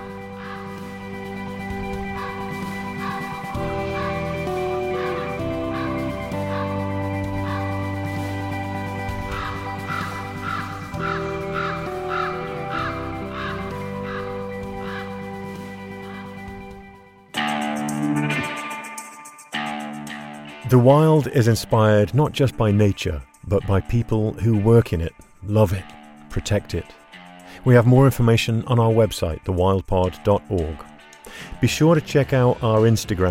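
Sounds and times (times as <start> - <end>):
raven giving harsh croaking calls: 0.0 - 16.8
sustained low musical drone: 0.0 - 18.6
speech: 20.7 - 26.8, 27.6 - 33.2.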